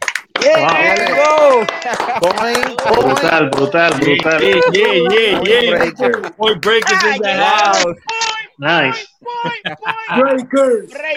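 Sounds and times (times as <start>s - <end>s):
scattered hand claps from a small group: 0.0s - 7.1s
person cheering: 0.4s - 6.2s, 6.8s - 10.4s
laughter: 0.4s - 8.0s, 8.9s - 11.1s
speech: 0.5s - 1.0s, 1.6s - 11.1s.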